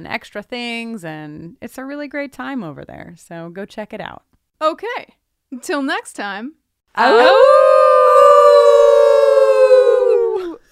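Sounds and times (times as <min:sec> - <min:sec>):
speech: 0:00.0 - 0:07.7
wolf howl: 0:07.0 - 0:10.6.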